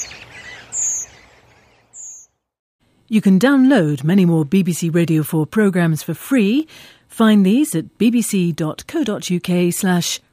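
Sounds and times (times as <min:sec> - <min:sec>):
redwing calling: 0:00.0 - 0:02.4
speech: 0:03.1 - 0:10.3.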